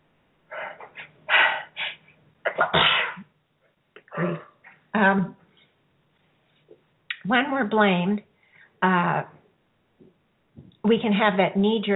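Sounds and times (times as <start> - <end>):
person sneezing: 1.3 - 3.3
speech: 7.3 - 9.4, 10.8 - 11.9.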